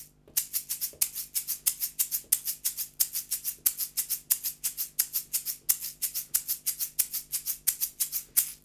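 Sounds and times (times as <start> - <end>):
shaker: 0.0 - 8.6.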